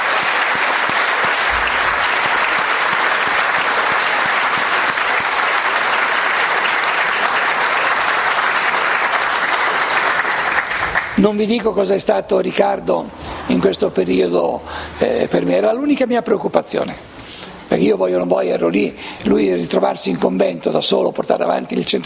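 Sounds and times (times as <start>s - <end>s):
large audience applauding in welcome: 0.0s - 12.0s
speech: 11.2s - 17.1s, 17.7s - 22.0s.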